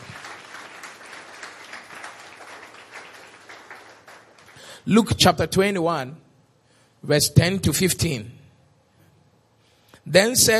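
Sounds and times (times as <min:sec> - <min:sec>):
audience clapping in praise: 0:00.0 - 0:04.8
speech: 0:04.8 - 0:06.2, 0:07.0 - 0:08.4, 0:10.0 - 0:10.5.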